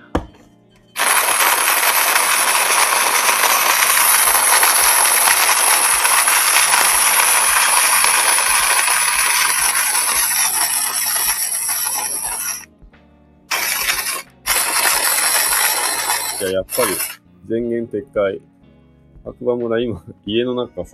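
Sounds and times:
coffee grinder crushing beans at home in Hakuba village: 1.0s - 12.7s, 13.5s - 17.2s
speech: 17.9s - 18.5s, 19.2s - 20.9s.

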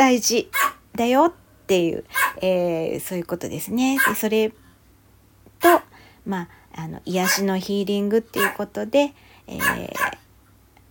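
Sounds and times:
speech: 0.0s - 4.6s, 5.6s - 10.2s
dog barking: 0.5s - 0.8s, 2.1s - 2.4s, 4.0s - 4.2s, 7.2s - 7.5s, 8.4s - 8.6s, 9.6s - 10.2s.

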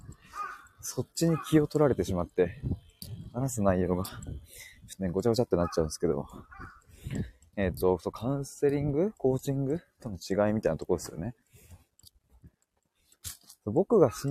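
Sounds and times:
crow cawing outdoors: 0.1s - 1.7s, 5.6s - 7.0s
speech: 0.9s - 2.8s, 3.4s - 11.4s, 13.6s - 14.2s.

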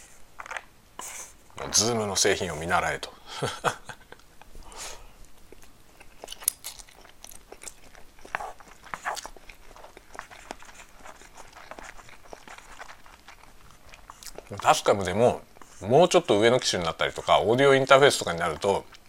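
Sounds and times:
speech: 1.7s - 3.9s, 14.6s - 19.0s
soft mouth sounds: 4.6s - 16.2s
crunchy chewing and biting of food while eating lunch: 4.8s - 19.0s.

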